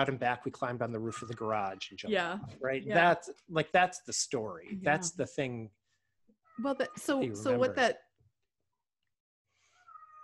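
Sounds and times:
speech: 0.0 - 5.8, 6.6 - 8.1
cat meowing: 9.8 - 10.2.

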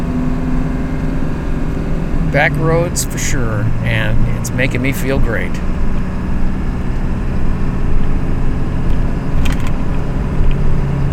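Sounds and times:
car driving on winding mountain back roads along Virginia 460: 0.0 - 11.1
speech: 2.3 - 5.8.

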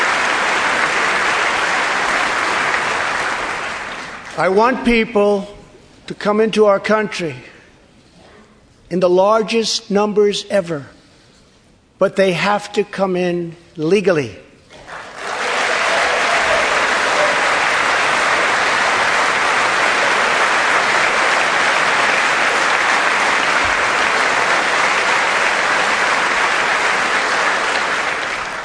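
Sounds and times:
sustained applause from a large crowd: 0.0 - 4.6, 14.7 - 28.6
speech: 4.4 - 7.5, 8.9 - 11.0, 12.0 - 14.4.

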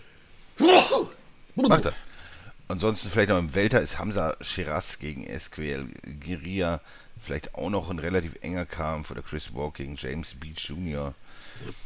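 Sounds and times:
person sneezing: 0.6 - 2.0
speech: 0.9 - 2.1, 2.7 - 11.8.

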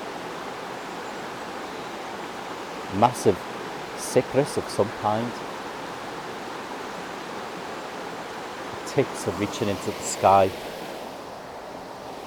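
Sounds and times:
river flowing: 0.0 - 12.2
speech: 2.9 - 5.6, 9.0 - 10.7.

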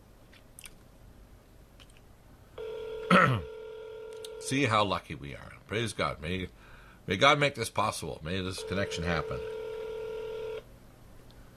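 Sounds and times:
faint hiss: 0.0 - 11.5
telephone keypad dialing tone: 2.6 - 4.5, 8.6 - 10.6
speech: 3.2 - 3.5, 4.4 - 9.6.

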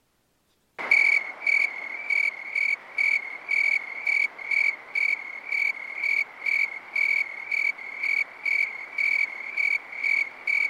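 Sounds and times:
constant buzz: 0.0 - 10.6
dense chorus of tree crickets chirping in synchronized pulses: 0.8 - 10.6.

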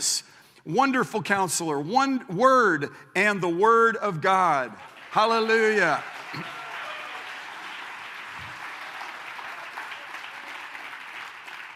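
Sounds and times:
speech: 0.0 - 6.6
large congregation applauding: 4.8 - 11.7.

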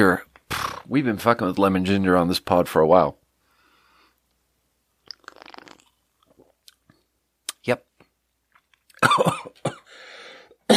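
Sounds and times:
speech: 0.0 - 0.3, 0.9 - 3.2, 7.6 - 7.9, 9.1 - 9.8
person coughing after a sip of ginger drink: 9.0 - 9.9
raspy wheezing breath: 9.8 - 10.6.

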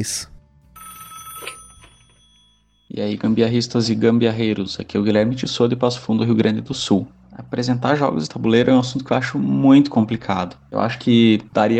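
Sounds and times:
speech: 0.0 - 0.3, 3.0 - 11.7
telephone ringing with an electronic tone: 0.7 - 3.2.

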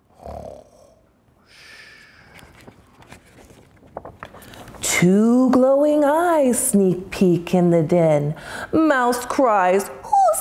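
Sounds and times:
bear snoring: 0.1 - 1.0
speech: 5.0 - 10.0.

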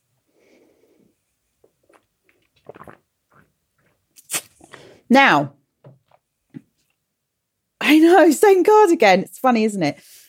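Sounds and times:
swallowing gulps: 1.6 - 4.8
slurping sip of a drink: 1.6 - 5.0
wet mouth clicks: 1.8 - 4.8
speech: 5.1 - 5.6, 7.9 - 10.2.

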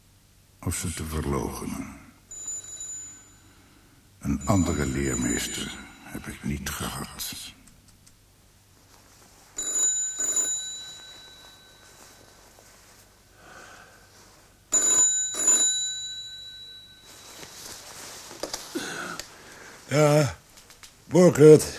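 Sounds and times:
speech: 0.6 - 2.0, 4.3 - 7.6, 19.9 - 20.4, 21.2 - 21.7
old-fashioned telephone bell ringing: 2.3 - 6.3, 9.6 - 12.4, 14.7 - 17.7
breathing: 3.3 - 4.1, 13.3 - 14.4, 18.7 - 19.9
soft rustling: 7.9 - 15.2, 16.2 - 21.1.

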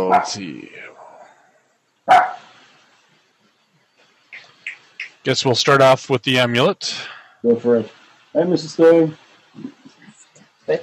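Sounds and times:
dog barking at the gate: 0.0 - 0.4, 2.1 - 2.5
speech: 0.1 - 0.9, 5.2 - 9.8, 10.7 - 10.8.

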